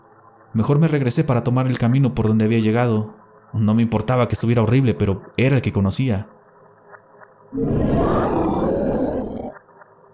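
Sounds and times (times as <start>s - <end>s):
speech: 0.5s - 6.4s, 7.5s - 7.8s
deep rumbling growl from caves: 7.6s - 9.6s.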